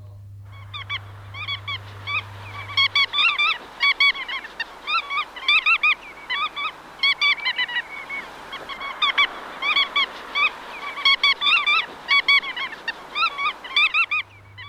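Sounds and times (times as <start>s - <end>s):
low hum: 0.0s - 4.8s, 13.6s - 14.6s
bar-tailed godwit calling: 0.0s - 14.6s
hiss: 0.0s - 14.6s.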